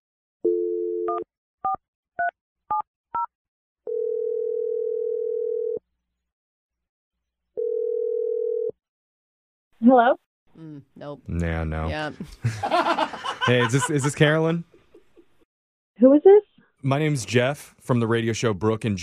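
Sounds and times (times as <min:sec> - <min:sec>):
telephone dial tone: 0:00.4 - 0:01.3, 0:03.9 - 0:05.8, 0:07.6 - 0:08.8
speech: 0:01.2 - 0:01.8, 0:09.8 - 0:14.7, 0:16.0 - 0:19.0
telephone ringing tones: 0:03.9 - 0:05.8, 0:07.6 - 0:08.8
laughter: 0:12.2 - 0:15.4.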